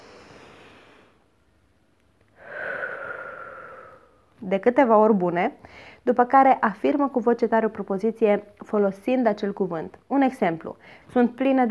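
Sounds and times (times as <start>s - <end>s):
deep breath in and out during a relaxation exercise: 0.0s - 1.4s, 2.4s - 4.4s, 5.6s - 6.0s
speech: 4.4s - 11.6s.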